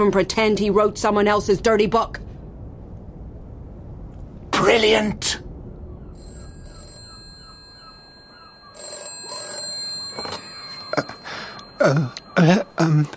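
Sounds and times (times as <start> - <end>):
speech: 0.0 - 2.2, 4.6 - 5.5, 11.8 - 13.1
old-style telephone bell ringing: 6.2 - 13.1.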